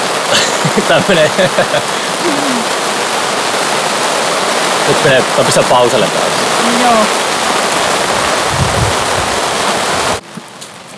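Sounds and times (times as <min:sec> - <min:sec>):
heavy rain pouring: 0:00.0 - 0:10.9
laughter: 0:00.3 - 0:02.7
speech: 0:00.8 - 0:02.7, 0:04.9 - 0:07.2
faint murmur: 0:02.0 - 0:02.7.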